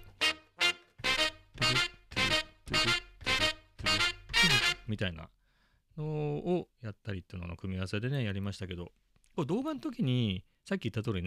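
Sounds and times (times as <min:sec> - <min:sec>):
finger drumming on sampler pads: 0:01.0 - 0:04.5
speech: 0:04.9 - 0:05.4, 0:06.0 - 0:11.2.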